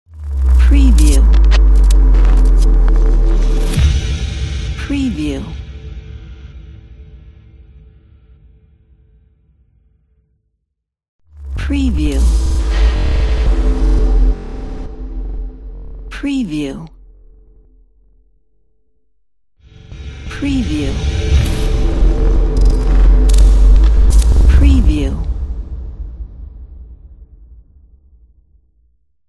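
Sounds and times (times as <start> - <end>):
glitch texture logo: 0.1 - 4.1, 11.4 - 14.6, 20.3 - 25.3.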